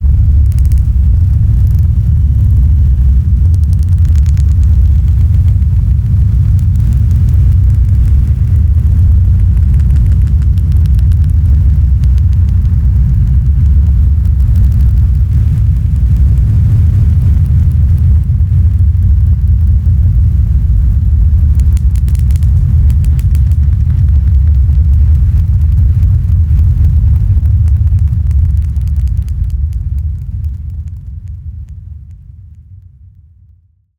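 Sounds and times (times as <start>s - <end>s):
glitch sounds: 0.0s - 18.2s
designed fire texture rumbling: 0.0s - 33.8s.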